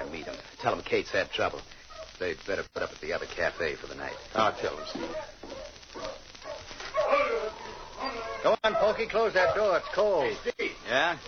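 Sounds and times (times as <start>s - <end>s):
speech: 0.6s - 5.4s, 8.4s - 11.2s
sled dog team barking, yipping and whimpering: 1.9s - 2.2s, 4.0s - 10.4s.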